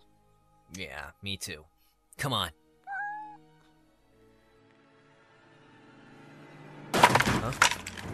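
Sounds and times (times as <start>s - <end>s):
speech: 0.7s - 2.6s, 7.4s - 8.1s
cat meowing: 2.8s - 3.5s.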